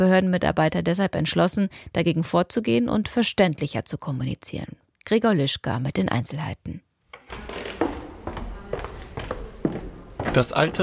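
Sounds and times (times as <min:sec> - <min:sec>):
speech: 0:00.0 - 0:07.6, 0:10.3 - 0:10.8
footsteps on creaking wooden floorboards: 0:07.1 - 0:10.8.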